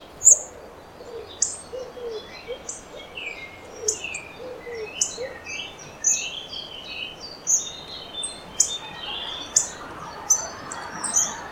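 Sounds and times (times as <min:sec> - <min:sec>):
hawfinch singing: 0:00.2 - 0:11.4.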